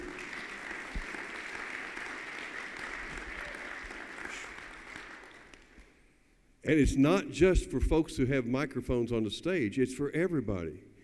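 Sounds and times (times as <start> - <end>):
applause from a sizable audience: 0.0 - 5.9
speech: 6.6 - 10.9.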